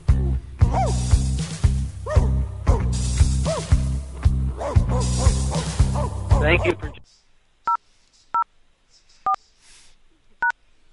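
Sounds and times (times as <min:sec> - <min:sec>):
steady low humming or droning music bed: 0:00.0 - 0:07.0
dog barking: 0:02.0 - 0:02.8, 0:03.4 - 0:03.8, 0:04.6 - 0:06.7
speech: 0:06.5 - 0:07.0.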